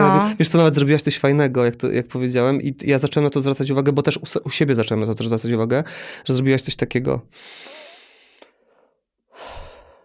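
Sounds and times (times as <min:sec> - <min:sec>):
speech: 0:00.2 - 0:07.8
deep breath: 0:05.9 - 0:06.3, 0:07.3 - 0:10.0.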